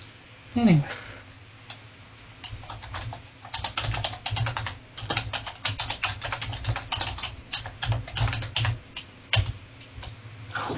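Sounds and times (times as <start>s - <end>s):
speech: 0.6s - 1.0s
fingers typing on a computer keyboard: 2.4s - 10.1s.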